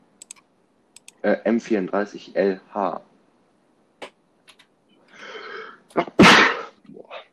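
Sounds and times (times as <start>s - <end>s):
typing on a computer keyboard: 0.2s - 1.2s, 4.0s - 5.1s
speech: 1.2s - 3.1s
small clicks and rustles: 4.4s - 5.1s
sneeze: 6.0s - 7.2s.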